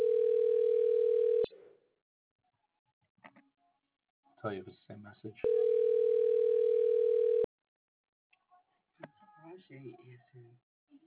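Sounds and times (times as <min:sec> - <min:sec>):
telephone ringback tone while calling a cell phone: 0:00.0 - 0:01.5, 0:05.4 - 0:07.5
speech: 0:04.4 - 0:05.7, 0:09.6 - 0:10.7.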